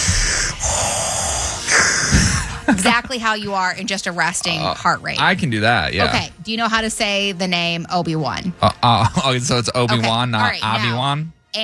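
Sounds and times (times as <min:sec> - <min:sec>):
voice imitating a movie villain's heavy mechanical breathing: 0:00.0 - 0:03.0
laughter: 0:01.7 - 0:06.3, 0:08.6 - 0:11.0
speech: 0:02.7 - 0:11.6.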